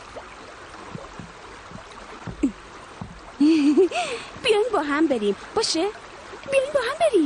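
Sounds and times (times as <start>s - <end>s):
water sloshing and lapping against a small moving boat: 0.0s - 7.2s
light knocks: 0.8s - 3.4s
speech: 3.4s - 7.2s.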